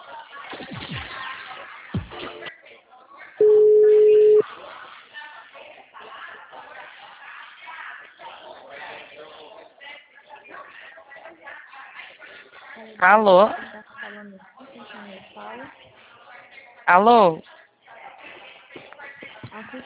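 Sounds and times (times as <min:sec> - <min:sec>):
narrow phone-quality talk: 0:03.4 - 0:04.4, 0:16.9 - 0:17.4
telephone tone while a call is being transferred: 0:03.4 - 0:04.4
speech: 0:13.0 - 0:13.6, 0:16.9 - 0:17.5.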